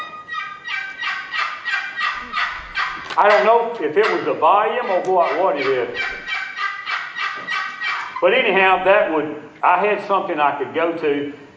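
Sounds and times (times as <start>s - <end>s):
turkey box call worked in raspy yelps: 0.0s - 8.8s
speech: 3.2s - 6.2s, 8.2s - 11.4s.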